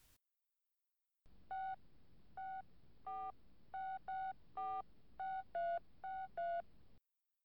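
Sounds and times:
faint hum: 1.3s - 7.0s
telephone keypad beeps dialing a number: 1.5s - 6.8s.

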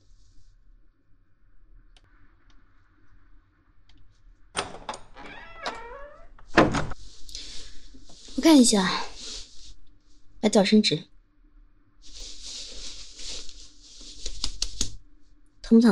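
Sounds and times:
door creaking as it swings: 4.6s - 7.0s
speech: 8.4s - 9.1s, 10.4s - 11.1s, 15.7s - 15.9s.

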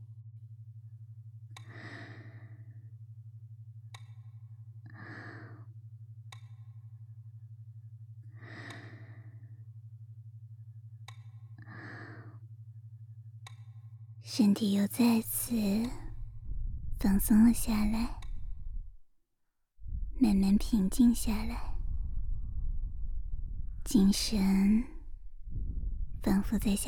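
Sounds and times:
steady low hum: 0.0s - 19.1s, 19.7s - 26.8s
slow deep breathing: 1.6s - 3.0s, 4.8s - 5.7s, 8.2s - 9.8s, 11.5s - 12.5s, 15.2s - 19.0s, 19.8s - 26.8s
speech: 14.3s - 16.0s, 17.0s - 18.2s, 20.2s - 21.7s, 24.0s - 24.9s, 26.2s - 26.8s.

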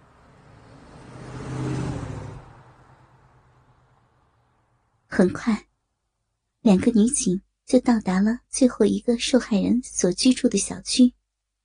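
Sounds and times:
car engine accelerating as driver presses the gas pedal: 0.0s - 5.0s
speech: 5.2s - 5.7s, 6.6s - 11.2s.

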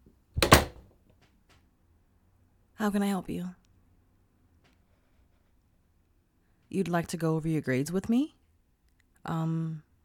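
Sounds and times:
door latch click: 0.4s - 0.8s
door swinging shut with solid thud: 0.4s - 0.9s
speech: 2.8s - 3.6s, 6.7s - 8.4s, 9.2s - 10.0s.

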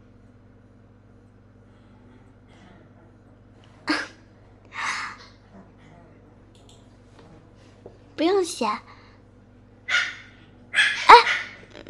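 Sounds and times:
speech: 8.2s - 8.9s
small village dog barking: 9.9s - 11.7s.

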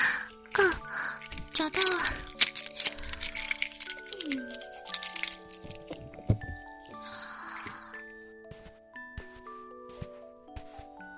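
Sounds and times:
key ring jingling: 0.2s - 7.1s
key scraping and rattling in a door lock: 1.4s - 7.0s
speech: 1.6s - 2.3s.

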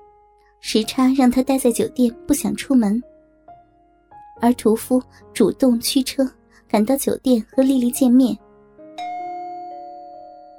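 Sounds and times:
speech: 0.6s - 3.1s, 4.4s - 8.4s
doorbell chime ringing at a hotel room door: 9.0s - 10.5s.

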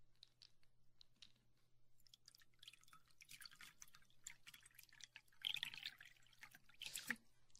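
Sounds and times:
water pouring into a cup: 2.1s - 7.2s.

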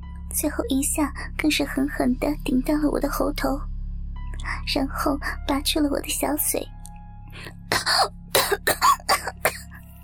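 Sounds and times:
speech: 0.4s - 3.7s, 4.4s - 9.4s
harsh raspy coughing fit: 7.7s - 9.7s.

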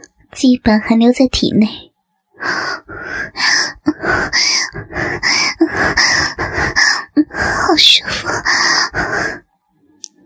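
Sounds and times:
speech: 0.4s - 2.6s, 4.4s - 9.4s
heavy panting breaths of a person exhausted after sex: 2.4s - 9.4s.

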